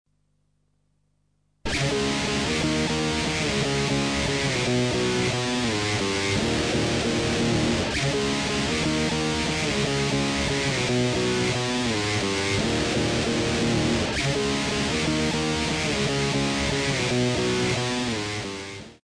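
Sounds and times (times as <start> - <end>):
reversed heavy electric guitar: 1.7 - 19.0.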